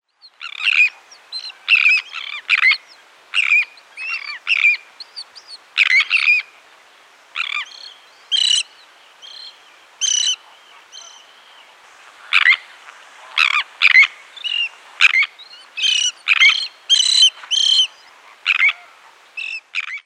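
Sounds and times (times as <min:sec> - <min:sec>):
great tern calling: 0:00.2 - 0:06.5, 0:07.4 - 0:20.0.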